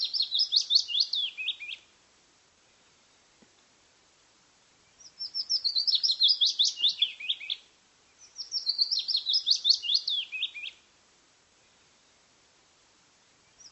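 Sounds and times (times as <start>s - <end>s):
bird twittering in high zigzagging notes: 0.0s - 1.8s, 5.0s - 7.6s, 8.2s - 10.8s.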